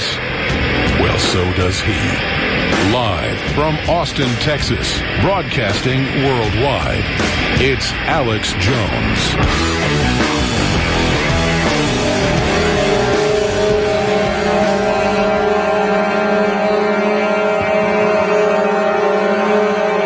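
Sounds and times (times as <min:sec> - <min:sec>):
vehicle engine rumble: 0:00.0 - 0:15.5
speech: 0:01.3 - 0:11.0
horns of thousands of trucks honking: 0:11.6 - 0:20.0.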